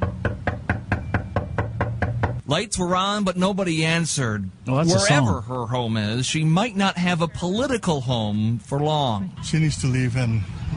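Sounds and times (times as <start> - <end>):
knocking on the wooden front door of a house: 0.0 - 2.4
low hum: 0.0 - 10.7
speech: 2.5 - 10.6.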